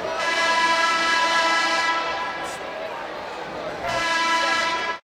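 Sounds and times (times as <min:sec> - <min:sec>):
horn signal at a basketball game: 0:00.2 - 0:02.4, 0:03.9 - 0:05.0.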